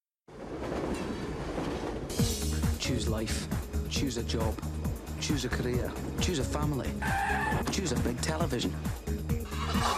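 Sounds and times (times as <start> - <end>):
train rumbling along rails with clattering cars: 0.3 - 6.8
speech: 2.9 - 9.9.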